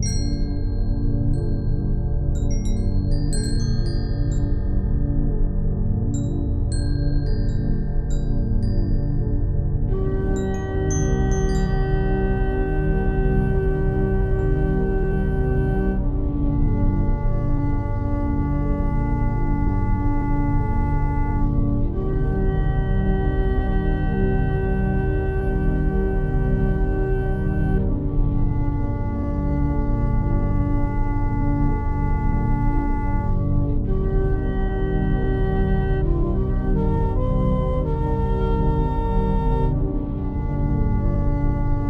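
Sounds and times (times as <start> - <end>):
flute tuned to 432 Hz: 0.1 - 41.8.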